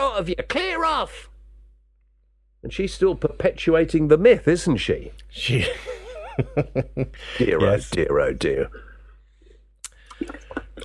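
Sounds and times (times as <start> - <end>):
speech: 0.2 - 1.3, 2.6 - 8.9
laughter: 5.5 - 7.6
someone gulping and sloshing while drinking water: 9.8 - 10.8
squishy swallowing: 9.8 - 10.8.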